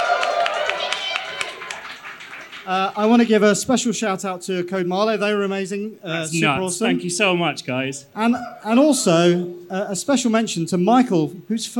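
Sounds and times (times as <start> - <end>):
crowd applauding: 0.0 - 3.4
speech: 2.6 - 11.7.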